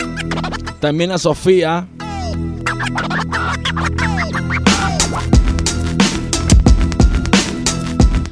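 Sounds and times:
turntable scratches: 0.0 - 0.7, 2.0 - 5.8
self-produced hip hop instrumental beat with bass line, kick drums and snares: 0.0 - 8.3
speech: 0.8 - 5.4.

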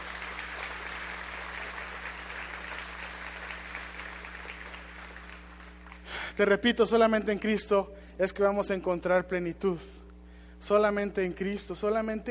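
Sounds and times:
large audience applauding new believers: 0.0 - 6.2
speech: 6.4 - 10.0, 10.6 - 12.2.

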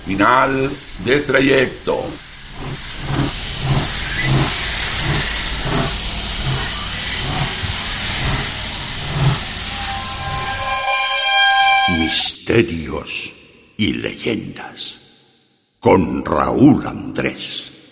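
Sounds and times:
train arriving at a station platform: 0.0 - 12.3
speech: 0.1 - 2.9, 12.1 - 15.0, 15.8 - 17.8.

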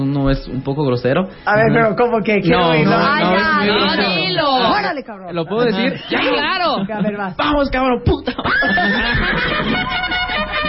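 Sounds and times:
speech: 0.0 - 10.6
laughter: 5.4 - 7.4, 8.1 - 10.6
horse whinnying: 8.5 - 9.9.

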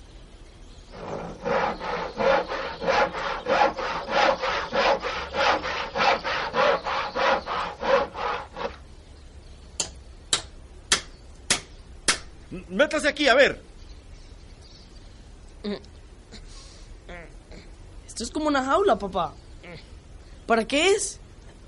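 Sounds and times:
hand saw cutting through firewood: 0.9 - 8.8
speech: 12.8 - 13.7, 18.3 - 19.9, 20.5 - 21.2.

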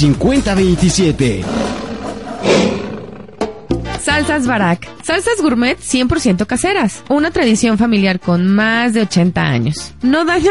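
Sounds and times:
speech: 0.0 - 1.8, 4.1 - 10.4
lion roar with rough rumbling growl: 1.2 - 3.7.

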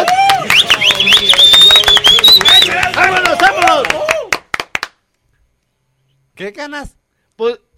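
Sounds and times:
cheering voices: 0.0 - 4.7
small group applauding: 0.0 - 5.1
shrill whistles: 0.3 - 2.8
speech: 6.4 - 7.7.

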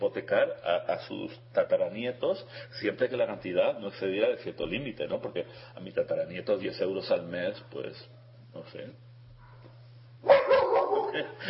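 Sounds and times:
speech: 0.0 - 9.0, 10.2 - 10.4, 11.1 - 11.4
faint low hum: 0.0 - 11.4
dog barking: 9.4 - 11.4.

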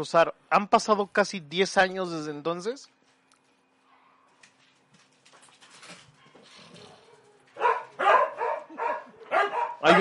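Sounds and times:
speech: 0.0 - 3.0
several dogs barking in a dog fight outside: 6.1 - 9.9.

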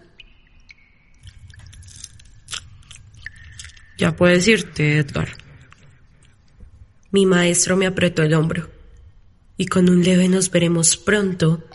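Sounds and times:
wet squelchy chewing by a creature: 0.7 - 7.1
crunching bites: 1.2 - 4.1
speech: 4.0 - 5.4, 7.1 - 8.8, 9.6 - 11.7.

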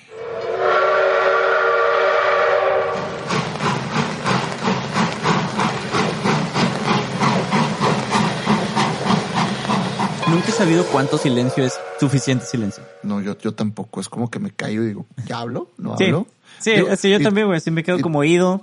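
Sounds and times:
loud sustained train whistle: 0.0 - 3.2, 10.2 - 13.4
train rolling past on the tracks: 2.9 - 11.9
speech: 10.5 - 18.6.

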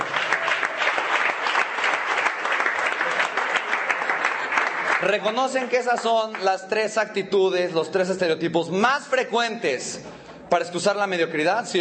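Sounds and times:
audience clapping: 0.0 - 7.0
speech: 5.0 - 11.8.

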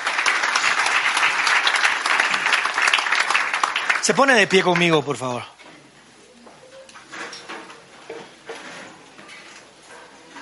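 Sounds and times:
sustained applause from a large crowd: 0.0 - 5.4
speech: 4.0 - 5.6.

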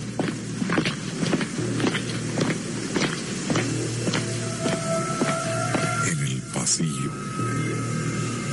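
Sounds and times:
hurried heavy footsteps outside a room: 0.0 - 6.0
constant low hum: 0.0 - 8.5
speech: 6.8 - 7.3.

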